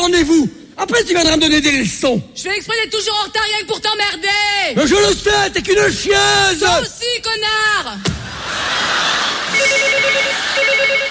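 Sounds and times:
speech: 0.2 - 8.2
laughter: 8.1 - 11.0
telephone ringing with an electronic trill: 9.6 - 11.0.

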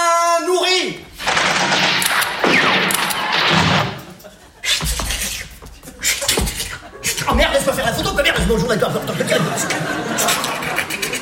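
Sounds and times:
gunfire volley fired at will: 1.2 - 4.2
laughter: 4.0 - 11.2
speech: 8.5 - 10.3.

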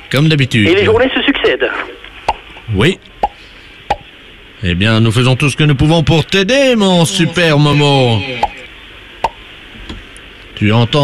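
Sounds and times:
speech: 0.1 - 2.0, 2.7 - 3.1, 4.6 - 8.5, 10.6 - 11.0
sharp hollow pops: 3.2 - 4.1.

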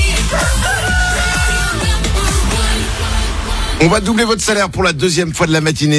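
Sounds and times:
dense loud musical backing with pounding low beats: 0.0 - 5.9
rooster crowing: 0.1 - 2.3
speech: 3.8 - 5.9.

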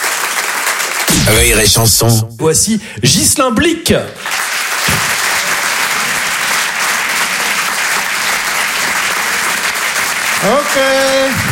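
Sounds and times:
audience applause: 0.0 - 1.1, 4.2 - 11.5
speech: 1.2 - 5.1, 10.4 - 11.5.

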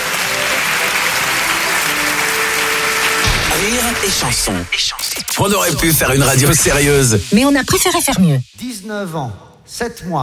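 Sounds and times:
applause: 0.0 - 4.8
speech: 3.7 - 10.2.

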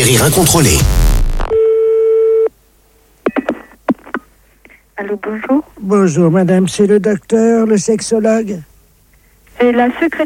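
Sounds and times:
speech: 0.1 - 1.1, 5.0 - 8.7, 9.6 - 10.2
telephone busy tone after hanging up: 1.5 - 2.5.

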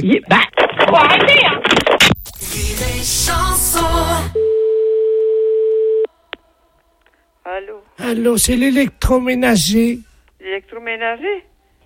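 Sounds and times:
speech: 0.0 - 2.1, 3.0 - 4.4, 7.5 - 11.5
telephone line tone after hanging up: 4.4 - 6.1.

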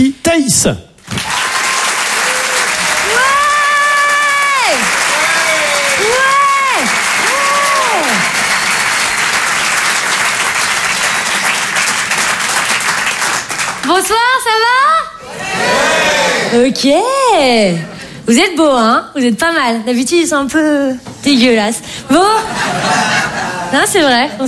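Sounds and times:
speech: 0.0 - 0.9, 14.0 - 15.0, 16.5 - 23.1, 23.7 - 24.4
audience applauding at a live comedy show: 1.0 - 14.0
voices shouting and cheering: 2.2 - 8.3, 14.8 - 16.6
laughter: 22.1 - 24.4.

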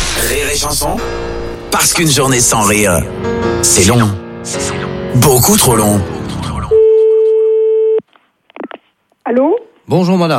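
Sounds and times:
speech: 0.3 - 6.2, 9.3 - 10.3
telephone busy tone after a call is hung up: 6.7 - 8.0.

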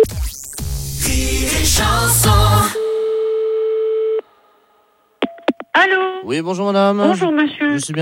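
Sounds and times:
jumbled electronic telephone line sound from a badly hung-up receiver: 0.1 - 3.1
loud steady single-pitched telephone tone from a badly hung-up receiver: 2.7 - 4.4
speech: 5.8 - 8.0.

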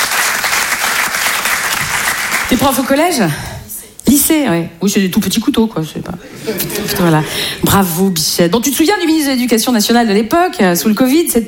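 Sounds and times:
audience applause: 0.0 - 2.9
speech: 2.5 - 3.5, 4.1 - 11.4
laughter: 6.2 - 7.6.

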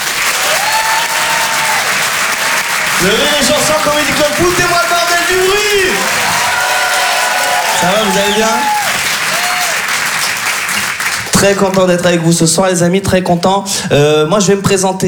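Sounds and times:
theatre audience clapping for a comedian walking on stage in Paris: 0.0 - 12.6
audience cheering and whooping: 0.2 - 10.0
speech: 3.0 - 6.3, 7.8 - 8.8, 11.4 - 15.0.

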